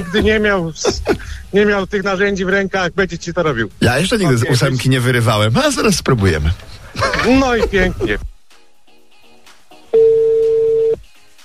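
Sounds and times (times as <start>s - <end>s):
laughter: 0.0s - 1.5s, 6.8s - 8.2s
speech: 0.0s - 8.3s
telephone ringing with a single steady electronic tone: 9.9s - 11.0s.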